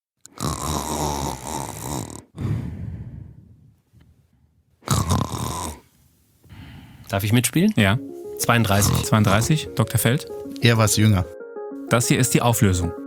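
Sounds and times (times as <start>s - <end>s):
person snoring loudly: 0.3s - 3.6s, 4.9s - 5.9s, 6.5s - 7.1s, 8.7s - 9.5s
speech: 7.1s - 13.0s.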